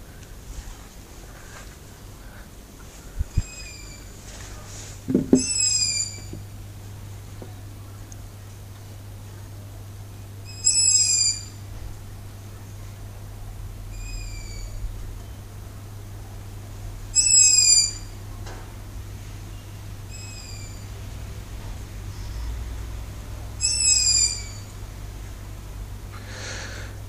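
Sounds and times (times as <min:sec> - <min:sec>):
steady low hum: 0:00.0 - 0:27.0
faint answering owl calls: 0:03.1 - 0:04.2, 0:05.2 - 0:06.5, 0:10.4 - 0:11.7, 0:13.9 - 0:14.9, 0:17.1 - 0:18.2, 0:20.1 - 0:21.0, 0:23.6 - 0:24.8
owl calling from a TV antenna on a house roof: 0:03.3 - 0:04.2, 0:05.4 - 0:06.4, 0:10.4 - 0:11.6, 0:13.9 - 0:14.8, 0:17.1 - 0:18.1, 0:20.1 - 0:20.9, 0:23.6 - 0:24.8.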